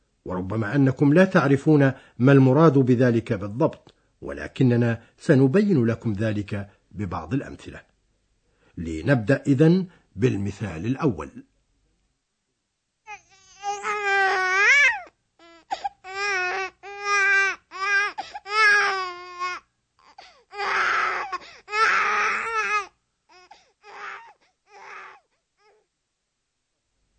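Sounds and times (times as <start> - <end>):
speech: 0.2 - 7.9, 8.8 - 11.5
infant crying: 13.1 - 25.9.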